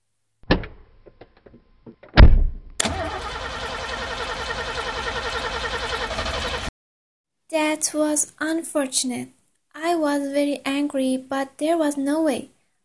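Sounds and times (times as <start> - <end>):
car engine cranking without starting: 2.8 - 6.7
speech: 7.8 - 12.6.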